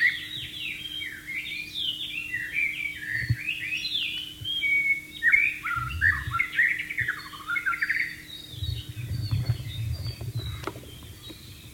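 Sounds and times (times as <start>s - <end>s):
White-rumped shama singing in the wild: 0.0s - 11.7s
steady hum: 0.0s - 11.7s
low rumbling noise: 5.5s - 7.5s, 8.1s - 11.7s.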